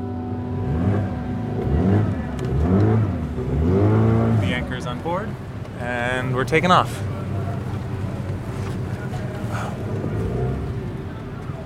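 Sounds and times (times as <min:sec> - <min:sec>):
motorboat engine droning at low speed on a river: 0:00.0 - 0:11.6
speech: 0:06.2 - 0:07.1.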